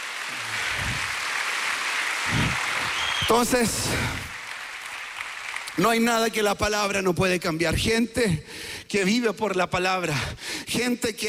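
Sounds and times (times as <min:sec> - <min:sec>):
crowd applauding: 0:00.0 - 0:06.6
speech: 0:03.0 - 0:04.3, 0:05.8 - 0:11.2.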